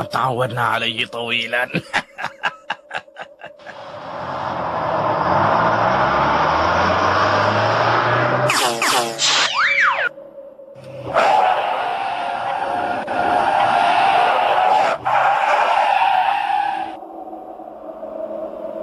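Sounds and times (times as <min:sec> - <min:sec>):
speech: 0:00.0 - 0:02.3
laughter: 0:01.6 - 0:03.9
heavy bus engine and road noise roaring: 0:02.0 - 0:10.2, 0:10.8 - 0:18.8
vehicle skidding with tire screech: 0:03.6 - 0:10.1, 0:10.8 - 0:18.8
high squealing sweeps: 0:03.6 - 0:18.8.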